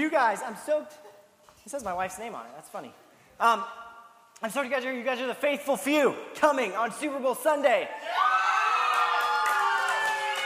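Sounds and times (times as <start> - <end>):
speech: 0.0 - 8.4
high-pitched yells: 8.0 - 10.4
large church audience cheering and shouting: 8.0 - 10.4.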